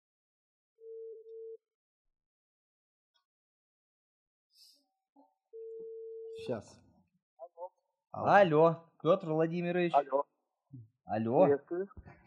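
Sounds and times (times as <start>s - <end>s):
telephone dial tone while placing a call: 0.9s - 1.6s
speech: 6.4s - 6.8s, 7.6s - 12.2s.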